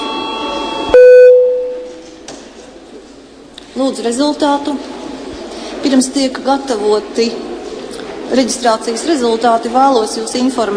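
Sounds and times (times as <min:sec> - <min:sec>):
parliament chamber electronic bell tone signalling attendance registration: 0:00.0 - 0:02.0
speech: 0:03.8 - 0:04.9, 0:05.8 - 0:07.5, 0:08.3 - 0:10.7.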